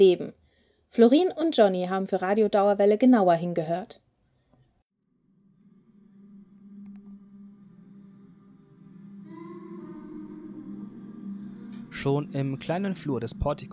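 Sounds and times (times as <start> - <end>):
speech: 0.0 - 4.0, 12.0 - 13.7
hummed chant-like melody of sustained voices from a sound installation: 5.4 - 13.7.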